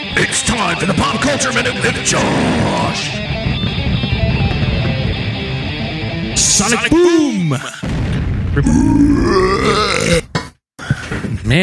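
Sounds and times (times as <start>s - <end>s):
busy noisy background: 0.1s - 6.8s
speech: 0.2s - 3.9s, 6.6s - 8.0s, 8.6s - 10.2s, 11.5s - 11.6s
loud drawn-out burp: 8.6s - 10.6s.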